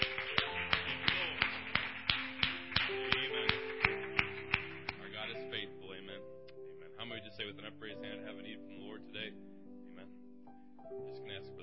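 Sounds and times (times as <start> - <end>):
group clapping in a steady rhythm: 0.0 - 5.5
sustained musical tones: 0.0 - 11.6.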